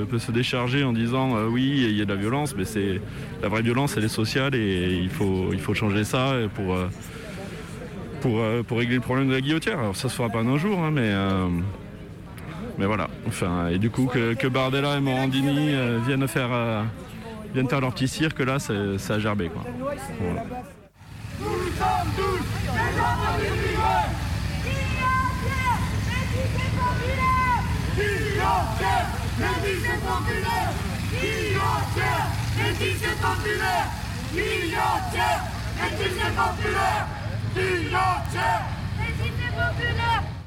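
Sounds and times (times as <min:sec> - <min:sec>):
speech: 0:00.0 - 0:07.2, 0:08.2 - 0:11.8, 0:12.8 - 0:20.8, 0:28.0 - 0:38.8
French CRS riot police vans idling: 0:00.0 - 0:08.6, 0:20.9 - 0:40.4
murmur of many voices chattering on a busy street: 0:00.0 - 0:40.4.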